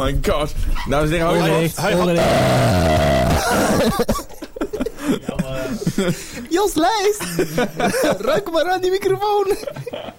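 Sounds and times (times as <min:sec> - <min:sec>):
speech: 0:00.0 - 0:04.4, 0:05.1 - 0:10.1
people laughing: 0:01.8 - 0:10.1
long loud droning burp: 0:02.2 - 0:03.8.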